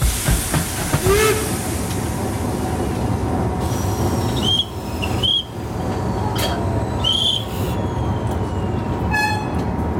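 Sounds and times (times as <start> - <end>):
steam museum train pulling away from a station on a heritage railway: 0.0 - 9.9
whistle-like squeals: 4.2 - 9.5.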